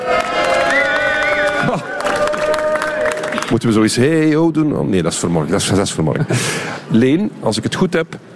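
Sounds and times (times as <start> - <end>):
live crowd cheering and whooping enthusiastically: 0.0 - 3.5
scattered claps: 0.0 - 3.6
speech: 1.7 - 1.9, 3.5 - 8.3.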